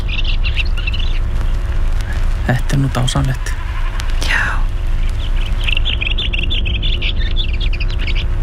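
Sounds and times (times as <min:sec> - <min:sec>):
bird singing with quick high chirping notes: 0:00.0 - 0:08.4
constant low rumble: 0:00.0 - 0:08.4
speech: 0:02.5 - 0:03.5.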